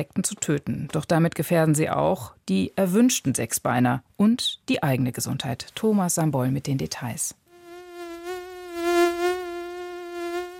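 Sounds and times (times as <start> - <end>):
speech: 0.0 - 7.4
mosquitoes whining: 7.5 - 10.5.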